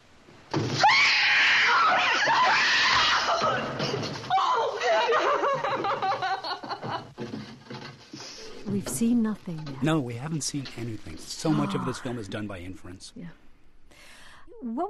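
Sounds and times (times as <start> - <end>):
woman's piercing unearthly scream: 0.8 - 5.1, 11.5 - 12.2
laughter: 4.6 - 7.2
speech: 9.0 - 13.4, 14.6 - 14.8
woman's wavering sobbing cries: 11.5 - 12.2.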